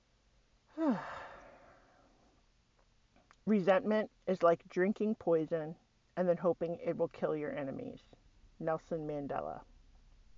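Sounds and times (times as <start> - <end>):
deep breath and long soft sighing exhale: 0.7 - 2.3
speech: 0.8 - 1.2, 3.5 - 9.7.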